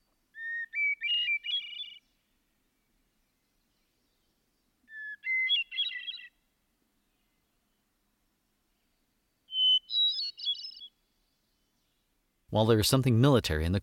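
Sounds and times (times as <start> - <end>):
hermit thrush singing: 0.0 - 7.9, 8.7 - 12.7
speech: 12.5 - 13.8.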